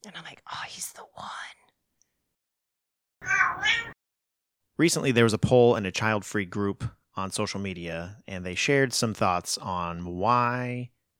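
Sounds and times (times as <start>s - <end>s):
cat meowing: 3.2s - 4.0s
speech: 4.8s - 11.0s.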